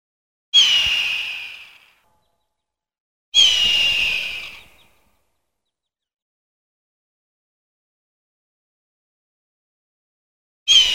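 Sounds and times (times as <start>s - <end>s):
hawk giving harsh hoarse screams: 0.6s - 2.0s, 3.4s - 4.8s, 10.7s - 10.9s.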